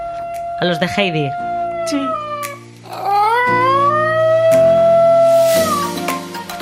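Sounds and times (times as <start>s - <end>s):
small brown dog with pointed ears giving a yodel-like howl: 0.0s - 6.0s
speech: 0.6s - 2.2s.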